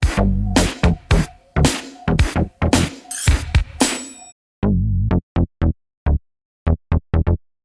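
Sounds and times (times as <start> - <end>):
Minimoog synthesizer boogie bass: 0.0 - 3.0, 4.6 - 7.4.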